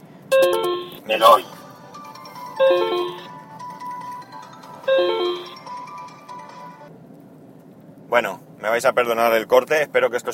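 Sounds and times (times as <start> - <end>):
low steady hum inside a car: 0.0 - 10.3
mobile phone ringtone playing a short electronic melody: 0.3 - 1.0, 1.6 - 6.9
speech: 1.1 - 1.6, 2.6 - 3.3, 8.1 - 10.3.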